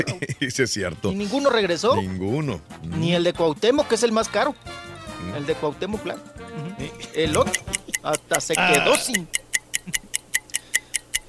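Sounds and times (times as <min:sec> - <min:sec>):
laughter: 0:00.0 - 0:00.6, 0:06.5 - 0:08.0
speech: 0:00.0 - 0:10.0
clock ticking: 0:06.8 - 0:11.2.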